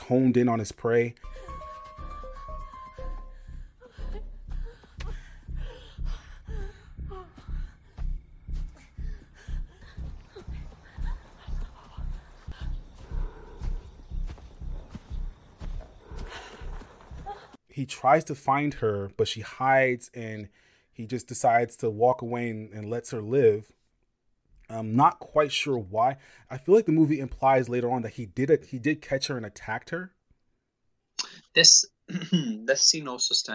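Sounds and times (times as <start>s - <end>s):
speech: 0.1s - 1.6s, 17.8s - 23.8s, 24.7s - 30.2s, 31.6s - 33.5s
footsteps running through a park at night in a film: 1.3s - 17.6s
man breathing heavily while chasing someone in a film: 3.2s - 17.6s.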